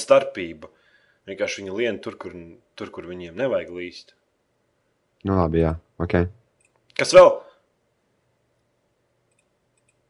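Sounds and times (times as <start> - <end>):
speech: 0.1 - 4.2, 5.2 - 6.4, 7.0 - 7.5
faint computer mouse clicks: 9.3 - 10.0.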